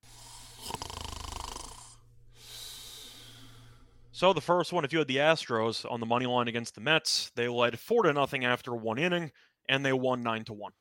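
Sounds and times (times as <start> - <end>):
long airy exhale: 0.0 - 0.9, 1.8 - 4.1
person snoring: 0.0 - 3.9
speech: 4.2 - 10.7.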